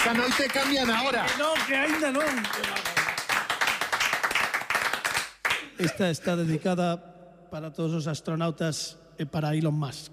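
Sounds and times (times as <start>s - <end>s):
speech: 0.0s - 2.9s, 5.8s - 10.1s
applause of many hands clapping: 0.0s - 6.1s.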